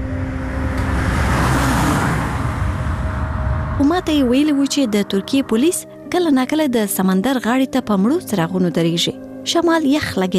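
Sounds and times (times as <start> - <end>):
car passing by on a road near the sea shore at night: 0.0 - 6.1
speech: 4.0 - 10.3.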